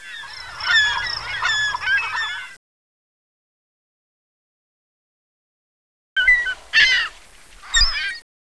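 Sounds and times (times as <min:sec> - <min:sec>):
seagulls calling: 0:00.0 - 0:02.6, 0:06.2 - 0:08.2.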